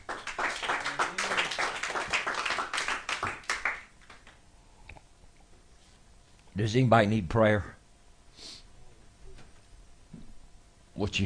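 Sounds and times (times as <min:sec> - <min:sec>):
crowd of people clapping their hands after a prayer: 0:00.0 - 0:04.4
speech: 0:06.6 - 0:07.8, 0:11.0 - 0:11.2.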